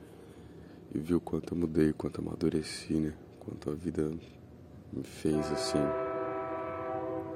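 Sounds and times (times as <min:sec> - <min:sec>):
speech: 0:00.9 - 0:06.0
passing train horn blaring: 0:05.3 - 0:07.3.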